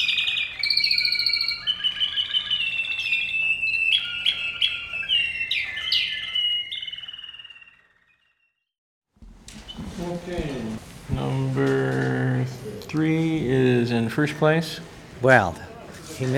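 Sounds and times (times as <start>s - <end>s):
canary singing: 0.0s - 8.6s, 9.5s - 15.5s
speech: 13.9s - 16.3s.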